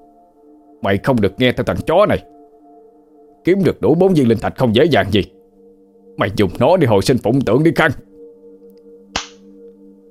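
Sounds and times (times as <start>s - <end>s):
speech: 0.8s - 2.3s, 3.4s - 5.4s, 6.2s - 8.1s
slap across the face: 9.1s - 9.5s.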